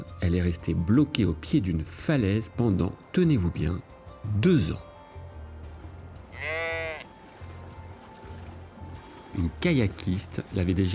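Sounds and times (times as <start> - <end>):
speech: 0.2 - 4.9, 9.4 - 10.9
ewe bleating: 6.3 - 7.2.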